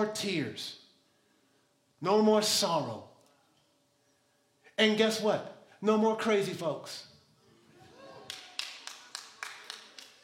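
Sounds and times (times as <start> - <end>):
speech: 0.0 - 0.8, 2.0 - 3.1, 4.8 - 7.1
audience clapping rhythmically: 8.2 - 10.2.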